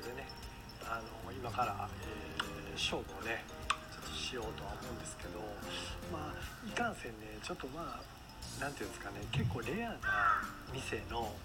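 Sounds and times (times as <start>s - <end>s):
speech: 0.9s - 11.4s
crow cawing: 6.4s - 6.7s, 10.0s - 10.7s.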